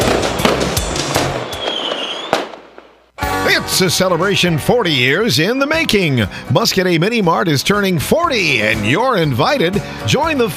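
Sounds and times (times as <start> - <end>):
whistling rocket streaking upward: 0.0 - 3.0
fireworks booming and crackling: 0.0 - 3.9
speech: 3.7 - 10.5.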